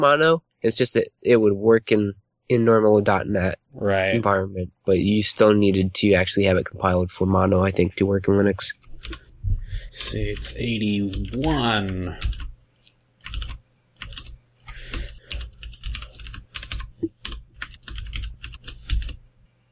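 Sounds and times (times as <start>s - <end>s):
speech: 0.0s - 9.2s, 9.9s - 12.4s
typing on a blank computer keyboard: 8.7s - 9.3s, 9.9s - 19.7s.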